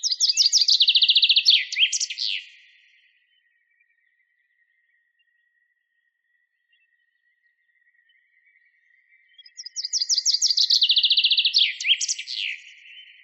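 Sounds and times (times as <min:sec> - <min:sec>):
Common chaffinch Fringilla coelebs singing trilled phrases: 0:00.0 - 0:04.8, 0:09.2 - 0:13.2.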